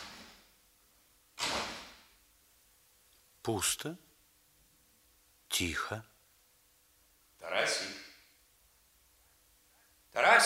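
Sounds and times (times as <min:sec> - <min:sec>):
faint hiss: 0:00.0 - 0:10.4
door opening with a rush of sound: 0:01.4 - 0:02.1
speech: 0:03.4 - 0:04.0, 0:05.5 - 0:06.1, 0:07.4 - 0:08.0, 0:10.2 - 0:10.4.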